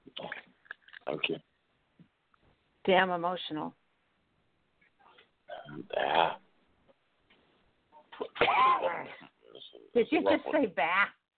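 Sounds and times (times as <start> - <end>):
speech: 1.1 - 1.5, 2.8 - 3.8, 5.8 - 6.4, 10.0 - 11.2
person coughing: 8.2 - 9.3.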